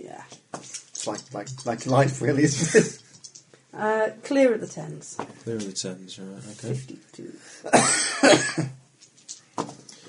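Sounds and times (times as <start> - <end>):
speech: 1.0 - 3.0, 3.8 - 8.8
person coughing: 7.7 - 8.8.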